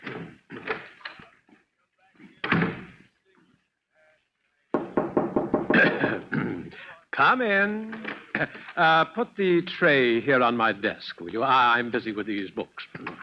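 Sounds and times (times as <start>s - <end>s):
knocking on a wooden door: 4.8s - 6.2s
speech: 7.2s - 13.0s.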